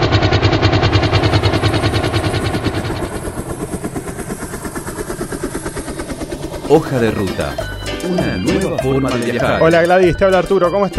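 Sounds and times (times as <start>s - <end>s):
helicopter rotor thump: 0.0s - 8.8s
helicopter engine roar: 0.0s - 9.6s
speech: 6.7s - 10.9s.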